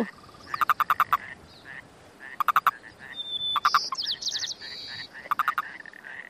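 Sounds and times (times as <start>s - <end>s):
higher chirping calls: 0.0s - 1.7s, 2.3s - 5.9s
steady outdoor hiss: 0.0s - 6.2s
male Yosemite toad chuck release calls during breeding: 0.3s - 1.3s, 2.3s - 2.8s, 3.5s - 6.0s.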